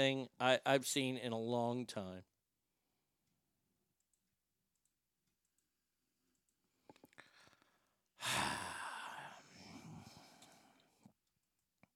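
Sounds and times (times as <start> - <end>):
speech: 0.0 - 2.3
long breathy snore: 8.2 - 10.8.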